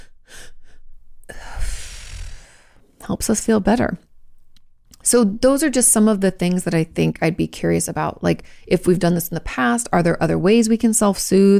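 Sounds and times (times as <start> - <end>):
quick double in-breaths as a calming exercise: 0.0 - 2.8
speech: 3.1 - 4.1, 5.1 - 11.5.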